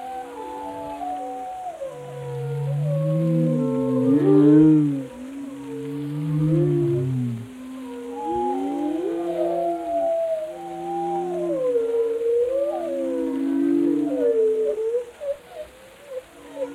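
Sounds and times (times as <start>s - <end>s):
whale low sustained moans: 0.0s - 16.7s.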